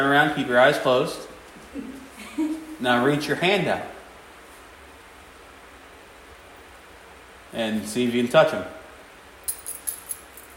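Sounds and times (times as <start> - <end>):
speech: 0.0 - 4.0, 7.5 - 8.8
keys jingling: 9.4 - 10.5.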